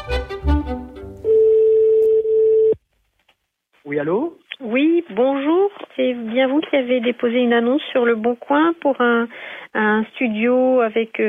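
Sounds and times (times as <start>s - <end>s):
phone dialing tones: 1.2s - 2.8s
speech: 4.0s - 11.2s.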